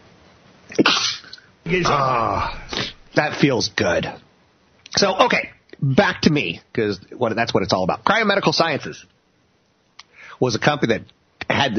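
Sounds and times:
loud sneeze: 0:00.7 - 0:03.1
speech: 0:01.6 - 0:04.2, 0:04.9 - 0:09.1, 0:10.4 - 0:11.7.

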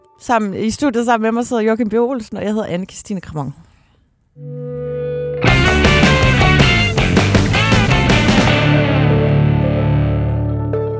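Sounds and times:
speech: 0:00.2 - 0:03.7
distorted heavily processed podcast intro jingle: 0:04.4 - 0:10.1.

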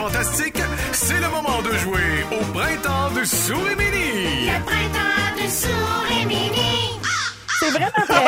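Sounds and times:
speech: 0:00.0 - 0:07.0, 0:07.6 - 0:08.2
crow cawing: 0:07.0 - 0:08.0
laughter: 0:07.6 - 0:08.2.

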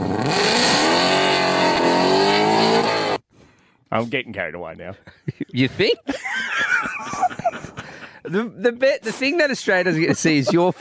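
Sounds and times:
Ferrari 296 GTB engine revving: 0:00.0 - 0:03.2
speech: 0:03.9 - 0:07.3, 0:08.2 - 0:10.7
laughter: 0:04.9 - 0:08.6, 0:09.7 - 0:10.7.

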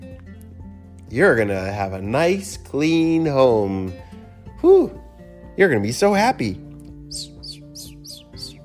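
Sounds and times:
speech: 0:01.1 - 0:05.0, 0:05.6 - 0:07.3
pet bird chirping: 0:07.0 - 0:08.6.

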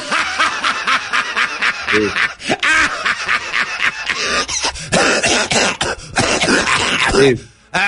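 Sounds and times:
laughter: 0:00.0 - 0:04.8, 0:06.4 - 0:07.8
person clearing throat: 0:04.9 - 0:07.4
person coughing: 0:04.9 - 0:07.4.

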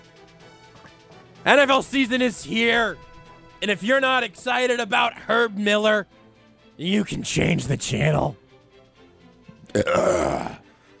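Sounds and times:
speech: 0:01.4 - 0:06.2, 0:06.8 - 0:08.4, 0:09.7 - 0:10.6
guttural burp with a rough growling edge: 0:09.6 - 0:10.6.

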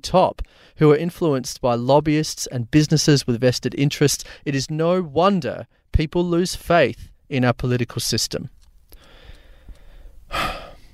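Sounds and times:
speech: 0:00.0 - 0:08.6
speaker taking a quick breathy inhale: 0:09.0 - 0:10.9.

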